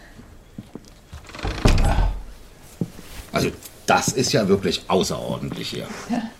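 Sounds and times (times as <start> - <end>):
shuffling: 0.5 - 6.2
door shutting with a solid thud: 1.2 - 2.3
speech: 3.4 - 6.3.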